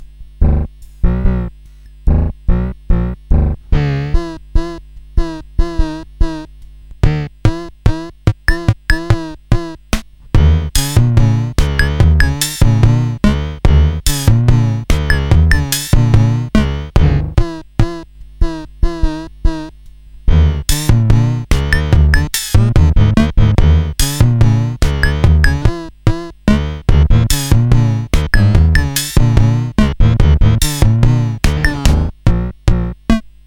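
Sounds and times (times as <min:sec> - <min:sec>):
circuit-bent Casio SK1 sampling keyboard: 0:02.1 - 0:19.7, 0:20.3 - 0:33.2.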